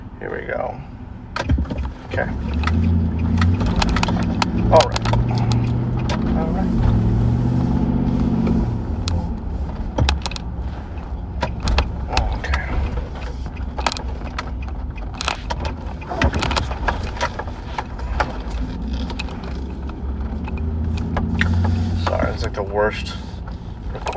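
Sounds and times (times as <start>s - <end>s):
car driving with low engine and road rumble: 0.0s - 24.1s
speech: 0.2s - 1.0s, 1.7s - 3.4s, 4.7s - 5.1s
sharp irregular clicks and rattles, possibly a turn-signal blinker: 1.4s - 6.4s, 9.8s - 22.2s.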